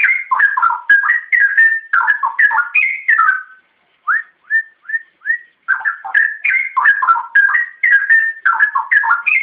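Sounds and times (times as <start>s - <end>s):
Oriental magpie-robin whistling song: 0.0s - 9.4s.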